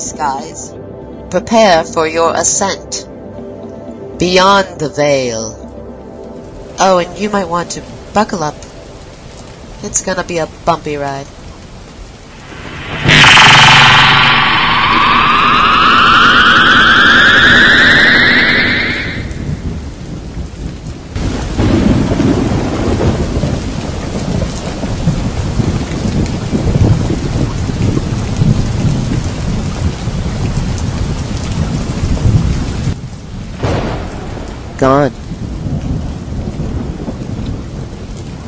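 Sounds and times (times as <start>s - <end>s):
speech: 0.0s - 3.1s, 4.2s - 5.6s, 6.8s - 8.6s, 9.8s - 11.4s
steady heavy rain pouring down: 5.7s - 38.4s
deep rolling thunder: 12.2s - 38.4s.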